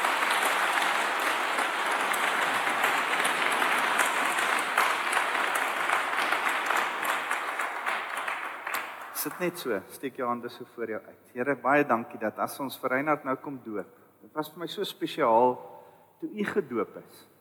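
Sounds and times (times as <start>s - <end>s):
applause from a large group at a baptism: 0.0s - 9.6s
speech: 9.2s - 17.3s.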